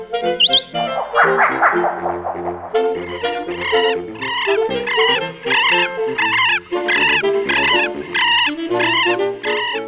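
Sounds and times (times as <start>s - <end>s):
rising whistle: 0.4s - 4.3s
steady low drone: 0.4s - 5.0s
harsh harmonic bird calls in quick bursts: 0.4s - 9.8s.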